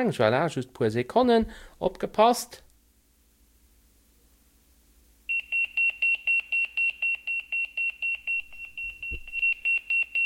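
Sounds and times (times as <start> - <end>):
speech: 0.0 - 2.6
pager beeping: 5.3 - 10.2
low thump: 8.8 - 9.4.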